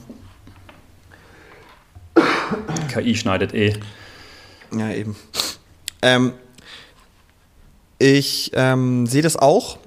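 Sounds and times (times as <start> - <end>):
single sharp loud cough: 2.2 - 3.0
speech: 2.6 - 4.0, 4.7 - 5.4, 6.0 - 6.8, 8.0 - 9.8.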